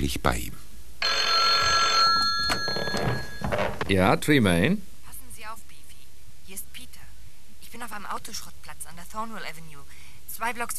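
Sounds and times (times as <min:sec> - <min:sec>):
speech: 0:00.0 - 0:01.2, 0:03.9 - 0:04.9, 0:07.8 - 0:10.7
telephone ringing: 0:01.0 - 0:04.2.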